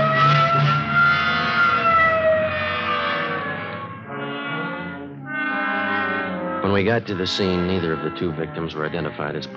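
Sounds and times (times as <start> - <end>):
police car siren wailing while responding to a shooting: 0.0 - 9.5
speech: 6.6 - 9.5.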